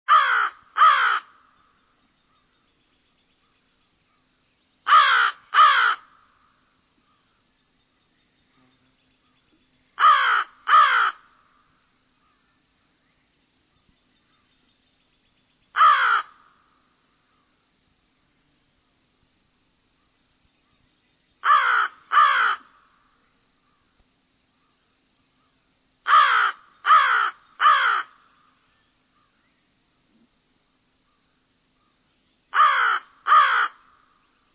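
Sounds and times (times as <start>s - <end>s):
American crow: 0.1s - 1.6s, 4.8s - 7.2s, 10.0s - 12.6s, 15.8s - 17.5s, 21.4s - 23.0s, 26.0s - 28.5s, 32.5s - 34.2s.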